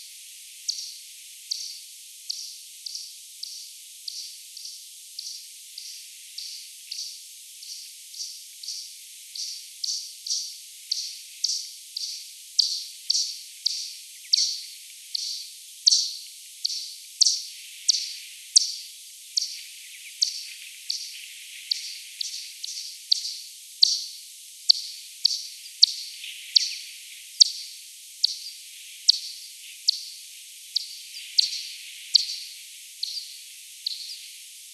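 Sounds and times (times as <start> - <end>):
Daubenton's bat calls slowed ten times: 0.7 - 34.7.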